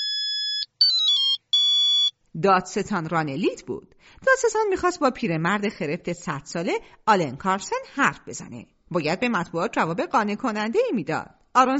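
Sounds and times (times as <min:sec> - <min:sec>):
telephone ringing with a high electronic ringtone: 0:00.0 - 0:02.1
speech: 0:02.4 - 0:11.7.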